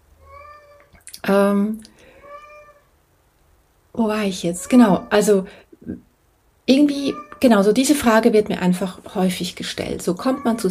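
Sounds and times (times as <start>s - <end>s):
domestic cat meowing: 0.2s - 1.0s, 2.1s - 2.9s, 4.6s - 5.3s, 6.9s - 7.6s, 10.2s - 10.6s
speech: 1.3s - 1.9s, 4.0s - 6.1s, 6.7s - 10.6s.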